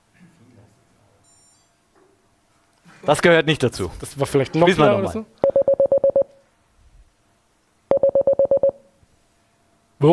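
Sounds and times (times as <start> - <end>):
speech: 3.0 - 5.4
short electronic Morse code error beeps: 7.9 - 8.8.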